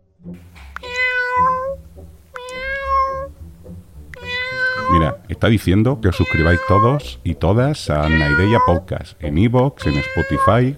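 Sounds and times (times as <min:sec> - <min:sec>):
cat meowing: 0:00.8 - 0:03.4, 0:04.1 - 0:05.2, 0:06.1 - 0:07.1, 0:07.9 - 0:08.9, 0:09.8 - 0:10.7
speech: 0:05.4 - 0:10.7.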